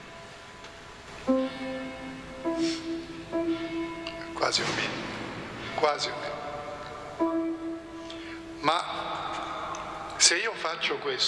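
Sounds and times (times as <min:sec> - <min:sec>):
church bell tolling: 0:01.3 - 0:10.1
speech: 0:04.5 - 0:05.1, 0:05.8 - 0:06.4, 0:08.6 - 0:09.1, 0:10.2 - 0:11.2.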